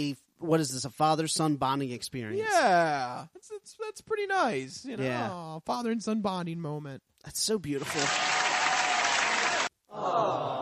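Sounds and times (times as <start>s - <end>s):
speech: 0.0s - 8.4s
applause: 7.8s - 9.7s.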